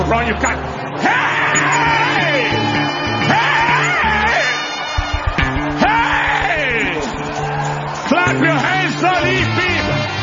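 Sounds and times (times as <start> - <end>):
large audience shouting and cheering in praise: 0.1 - 10.2
scattered sharp bursts of clapping: 4.0 - 10.2.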